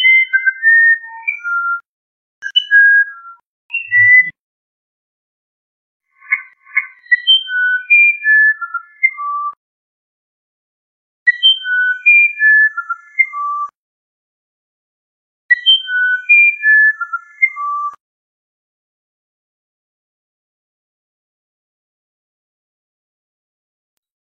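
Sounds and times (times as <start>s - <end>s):
musician wren whistling a phrase: 0.0s - 1.8s, 2.4s - 4.4s, 6.2s - 9.6s, 11.3s - 13.7s, 15.5s - 18.0s.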